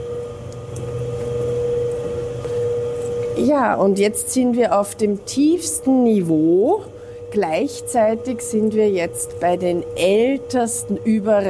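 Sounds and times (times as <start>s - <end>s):
ventilation blower running in an old building's lowest underground level: 0.0s - 11.4s
speech: 3.4s - 11.4s.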